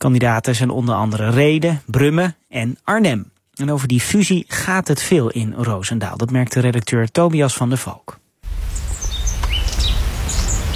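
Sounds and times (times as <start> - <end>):
speech: 0.0 - 8.8
small birds chirping in a garden: 8.7 - 10.7.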